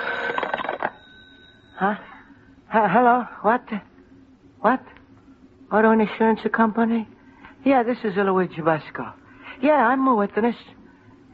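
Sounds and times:
telephone bell ringing: 0.0 - 2.4
speech: 1.8 - 2.1, 2.7 - 3.9, 4.6 - 5.0, 5.7 - 10.8.

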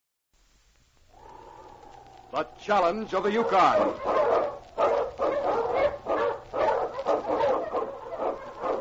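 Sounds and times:
speech: 2.3 - 4.2
husky sled dog barking: 3.2 - 8.7.

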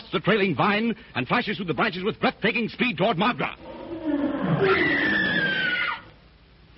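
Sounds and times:
speech: 0.1 - 5.2
lion roaring: 3.6 - 6.1.

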